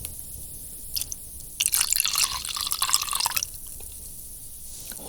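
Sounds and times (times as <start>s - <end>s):
vodka poured onto baby porridge: 1.0s - 3.8s.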